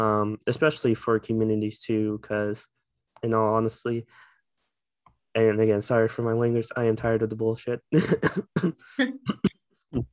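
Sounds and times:
speech: 0.0s - 4.3s, 5.3s - 10.1s
person coughing in short raspy bursts: 8.0s - 9.6s.

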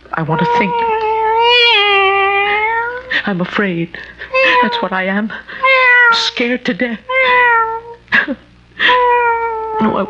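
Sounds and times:
speech: 0.2s - 0.9s, 3.2s - 7.1s, 8.2s - 8.4s, 9.8s - 10.0s
cat meowing: 0.4s - 3.1s, 5.6s - 6.3s, 7.1s - 8.0s, 8.9s - 10.0s.

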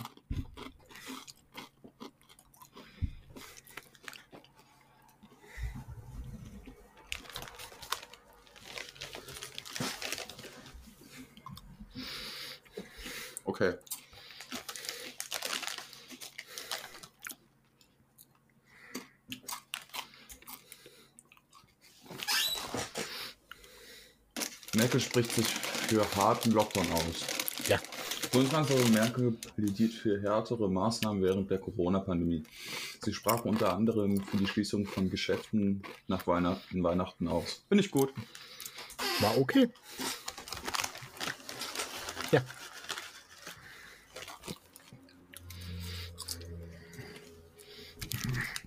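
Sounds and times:
crunching of chips being chewed: 0.0s - 5.7s, 6.6s - 23.8s, 24.4s - 29.9s, 32.5s - 48.6s
plastic chip bag crinkling: 5.9s - 11.3s, 13.9s - 17.4s, 24.4s - 29.9s, 37.9s - 48.6s
speech: 13.5s - 13.9s, 25.0s - 38.4s, 39.2s - 39.9s, 42.3s - 42.6s.

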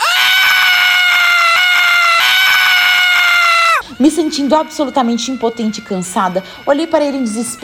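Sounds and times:
man screaming: 0.0s - 3.8s
speech: 4.0s - 7.6s.

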